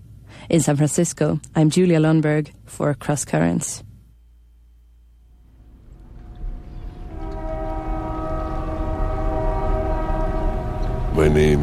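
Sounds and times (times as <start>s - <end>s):
speech: 0.5s - 3.9s, 11.2s - 11.6s
train horn blaring in sustained layered tones: 5.6s - 11.6s.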